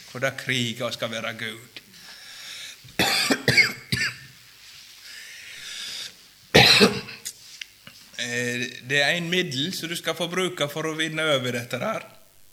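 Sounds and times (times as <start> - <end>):
speech: 0.1 - 1.8, 8.3 - 12.2
breathy hiss: 1.8 - 8.3
harsh coughing: 3.0 - 4.2, 6.6 - 7.3.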